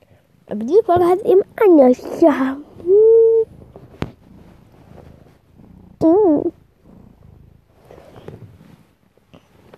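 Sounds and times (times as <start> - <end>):
cat purring: 0.0 - 9.7
faint rustling: 0.0 - 9.7
speech: 0.5 - 3.0.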